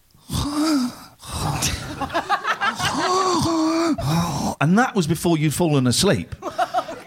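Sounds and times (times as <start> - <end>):
person imitating heavy rasping breathing in a car: 0.2 - 4.6
laughter: 1.6 - 3.9, 6.4 - 7.0
speech: 4.6 - 6.4.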